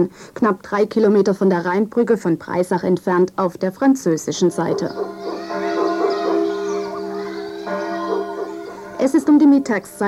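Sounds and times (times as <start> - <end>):
speech: 0.0 - 5.4, 9.0 - 10.0
dog yapping and howling in a small French village on a hot midday: 4.6 - 9.1.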